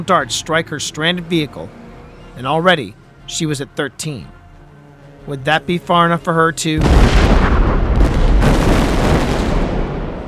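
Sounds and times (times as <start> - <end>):
speech: 0.0 - 1.8, 2.4 - 4.4, 5.2 - 7.6
explosion blast: 6.8 - 10.2.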